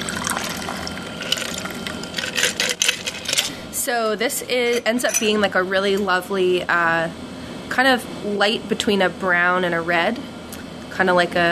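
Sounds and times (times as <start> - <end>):
cocktail pouring into a cocktail glass: 0.0 - 2.6
speech: 3.9 - 10.3, 11.0 - 11.5.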